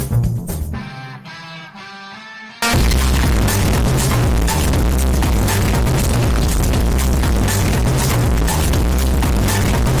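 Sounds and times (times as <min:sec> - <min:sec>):
boosted bass: 0:02.6 - 0:09.9.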